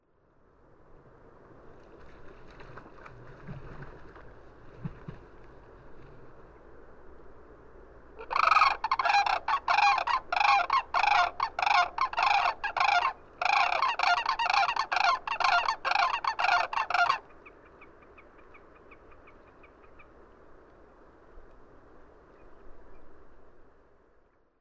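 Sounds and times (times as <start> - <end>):
cranes calling: 8.2 - 17.6.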